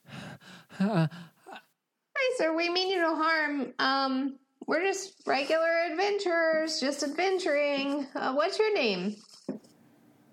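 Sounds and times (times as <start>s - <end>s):
voice imitating heavy breathing: 0.0s - 1.7s
speech: 0.8s - 1.3s, 2.4s - 9.3s.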